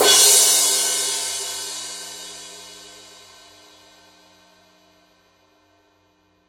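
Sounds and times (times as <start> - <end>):
power crash cymbal struck on the edge: 0.0 - 4.0.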